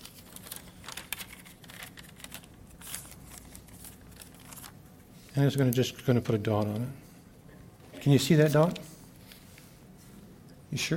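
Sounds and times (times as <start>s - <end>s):
pen and paper being picked up, rustling and crinkling: 0.0s - 5.8s
speech: 5.4s - 7.0s, 8.0s - 8.9s, 10.7s - 10.9s.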